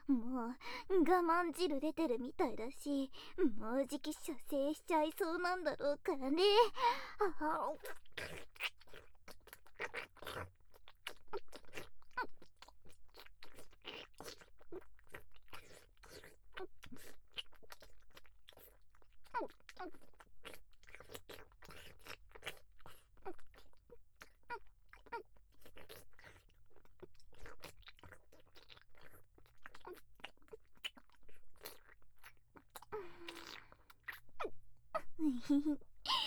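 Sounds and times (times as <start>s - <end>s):
wet sucking and licking mouth sounds of a woman: 0.0s - 36.2s
speech: 0.1s - 8.8s, 35.5s - 35.9s.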